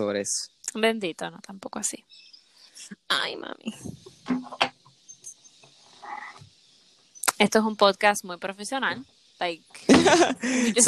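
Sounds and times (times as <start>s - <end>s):
speech: 0.0s - 4.7s, 7.4s - 10.8s
steady hissy outdoor background: 0.0s - 10.8s
loud birds chirping outside the windows: 0.5s - 10.8s
laughter: 9.8s - 10.8s.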